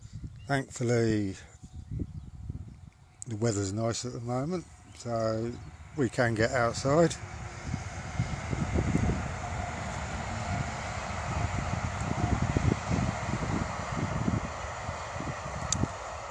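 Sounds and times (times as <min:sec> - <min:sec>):
speech: 0:00.5 - 0:01.5, 0:03.3 - 0:07.4
train passing on a railway line: 0:04.6 - 0:16.3.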